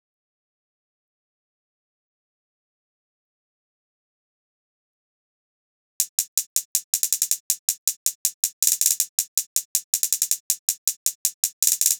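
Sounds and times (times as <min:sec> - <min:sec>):
hip hop closed hi-hat drum loop: 0:06.0 - 0:11.9.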